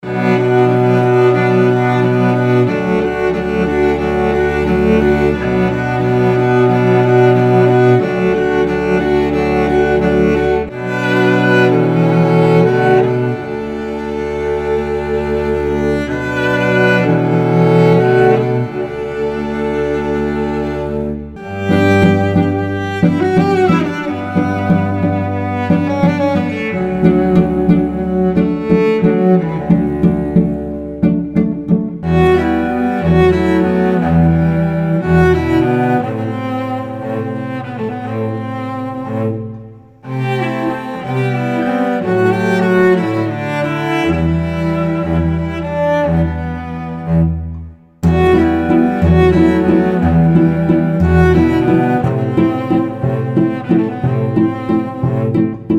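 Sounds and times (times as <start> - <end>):
cello: 0.0 - 55.7.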